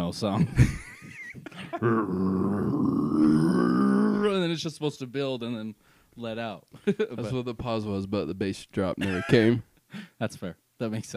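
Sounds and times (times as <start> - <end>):
speech: 0.1 - 0.8, 1.7 - 3.6, 4.2 - 11.1
deep roaring burp: 1.8 - 4.4.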